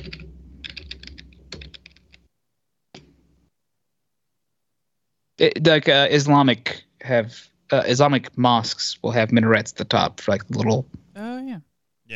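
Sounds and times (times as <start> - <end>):
typing on a computer keyboard: 0.0 - 2.2
speech: 5.4 - 11.0, 11.6 - 12.1.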